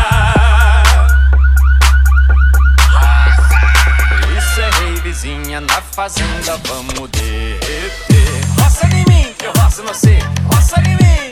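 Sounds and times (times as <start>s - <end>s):
heavy steady bass rumble: 0.0s - 9.3s, 10.1s - 11.1s
pickup truck electronic alarms wailing and chirping: 0.4s - 6.2s
speech: 5.6s - 11.3s.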